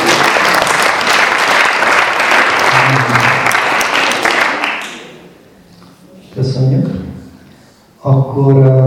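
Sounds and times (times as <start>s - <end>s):
dense audience applause from a sizeable crowd: 0.0s - 5.2s
speech: 8.4s - 8.7s.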